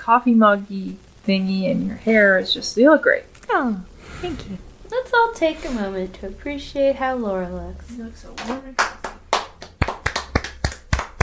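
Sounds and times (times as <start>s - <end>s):
speech: 0.1s - 9.0s
small group clapping: 8.4s - 11.2s.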